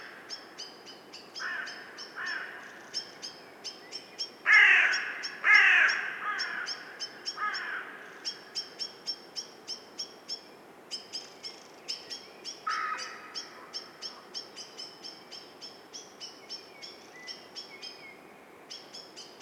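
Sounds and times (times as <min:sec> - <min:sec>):
carrion crow Corvus corone cawing: 0:01.4 - 0:02.8, 0:04.5 - 0:08.2, 0:12.7 - 0:13.8.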